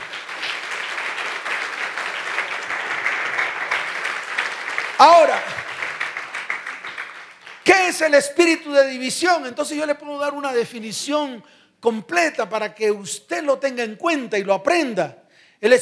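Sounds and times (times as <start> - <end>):
congregation applauding: 0.0 - 7.8
speech: 5.0 - 5.5, 7.7 - 15.7.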